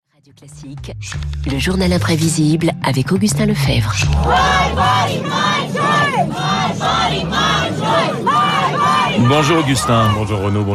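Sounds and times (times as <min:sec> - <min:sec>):
speech: 0:00.2 - 0:08.3, 0:09.2 - 0:10.7
large protest crowd chanting a slogan in unison: 0:04.1 - 0:10.4.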